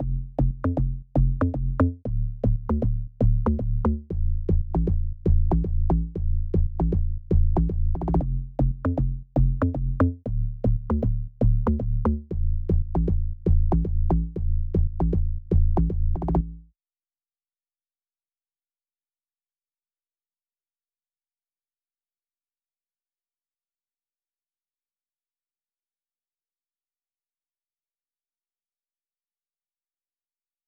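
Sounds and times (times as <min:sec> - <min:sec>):
117 BPM A minor bass loop: 0:00.0 - 0:16.6.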